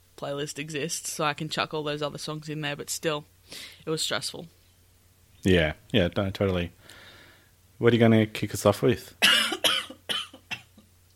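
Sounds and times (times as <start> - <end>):
low steady hum: 0.0 - 11.1
speech: 0.2 - 4.6, 5.4 - 7.0, 7.8 - 9.2
sharp close-miked coughs: 9.2 - 10.8.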